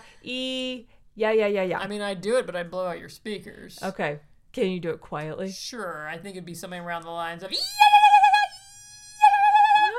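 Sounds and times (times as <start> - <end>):
speech: 0.2 - 7.9
person vocally imitating a high-pitched mosquito-like whooping whine: 7.5 - 9.9.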